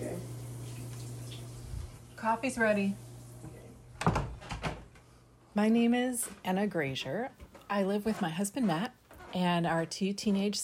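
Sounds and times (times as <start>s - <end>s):
shower water running: 0.0s - 4.0s
speech: 2.2s - 3.0s, 5.6s - 10.6s.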